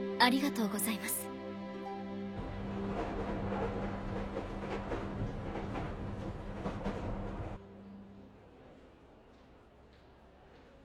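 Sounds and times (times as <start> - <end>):
speech: 0.2 - 1.3
moving train rumble heard from inside the carriage: 2.3 - 7.6
train wheels clattering over the rails: 2.4 - 7.6.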